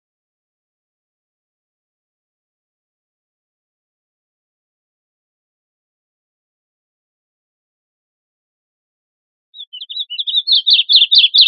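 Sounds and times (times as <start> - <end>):
bird chirping: 9.6 - 11.4.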